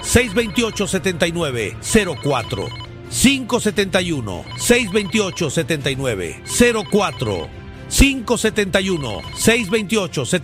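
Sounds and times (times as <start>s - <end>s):
telephone ringing for an incoming listener call: 0.0s - 3.0s, 4.4s - 5.7s, 6.4s - 7.5s, 8.8s - 9.9s
speech: 0.1s - 10.4s.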